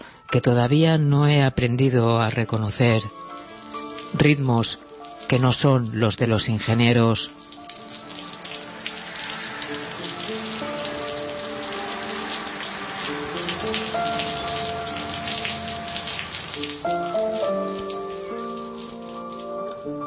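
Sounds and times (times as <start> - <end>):
speech: 0.3 - 3.2, 4.1 - 7.4
rain falling on the flat roof and porch of a cabin: 3.1 - 6.0, 7.2 - 19.8.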